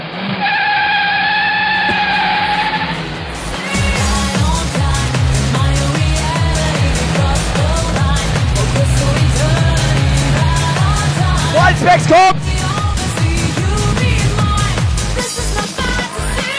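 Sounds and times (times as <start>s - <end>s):
bus engine rumbling and whining as it pulls up: 0.0s - 16.4s
speech: 11.8s - 12.4s.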